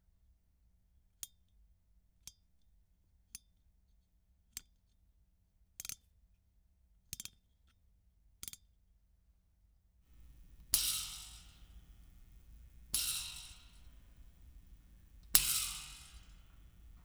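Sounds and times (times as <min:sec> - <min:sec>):
desk lamp: 0:10.2 - 0:17.0.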